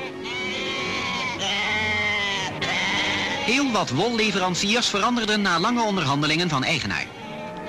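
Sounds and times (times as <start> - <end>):
sheep bleating at a large sheep market: 0.0 - 4.5
speech: 3.5 - 7.2.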